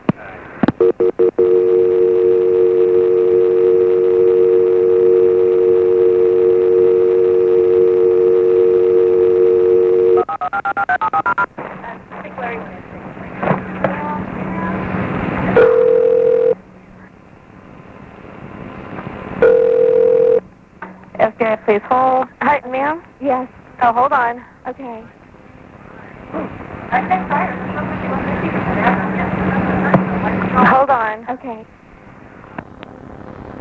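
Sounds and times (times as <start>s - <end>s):
crackly telephone line noise: 0.0s - 33.5s
telephone dial tone: 0.8s - 11.5s, 15.6s - 16.6s, 19.4s - 20.4s
speech: 23.9s - 25.2s, 26.9s - 29.9s, 30.6s - 31.8s.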